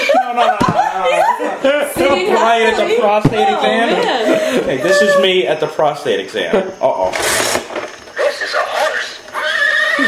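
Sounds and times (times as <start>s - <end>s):
laughter: 0.0s - 5.5s
speech: 0.4s - 2.0s, 2.6s - 7.7s
horse neighing: 8.9s - 10.0s.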